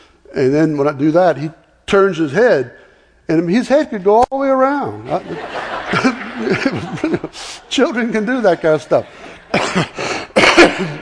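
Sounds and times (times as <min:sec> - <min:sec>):
speech: 0:00.4 - 0:10.1, 0:10.8 - 0:11.0
laughter: 0:05.0 - 0:11.0
harsh raspy coughing: 0:09.4 - 0:11.0.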